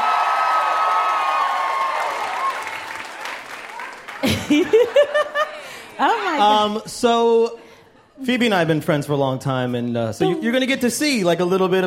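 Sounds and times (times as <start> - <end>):
audience applause and cheering: 0.0 - 6.1
laughter: 4.2 - 6.8
speech: 4.5 - 5.3, 6.0 - 7.6, 8.2 - 11.8.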